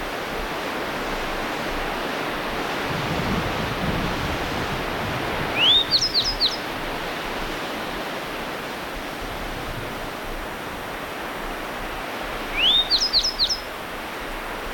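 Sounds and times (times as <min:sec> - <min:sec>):
constant rushing noise: 0:00.0 - 0:12.7
grey bunting calling: 0:05.5 - 0:06.6, 0:12.5 - 0:13.7.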